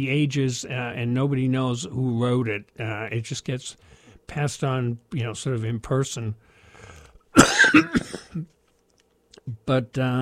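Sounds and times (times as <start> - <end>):
speech: 0.0 - 8.6, 9.5 - 10.2
person coughing: 7.4 - 8.5.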